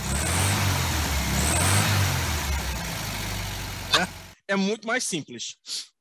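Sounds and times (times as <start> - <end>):
Volkswagen Beetle engine starting and running: 0.0 - 4.4
speech: 4.0 - 5.9.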